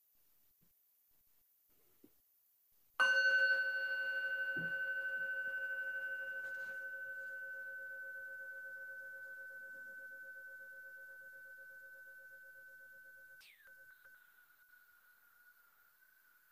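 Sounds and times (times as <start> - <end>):
meditation bell ringing during a guided breathing meditation: 3.0 - 15.7.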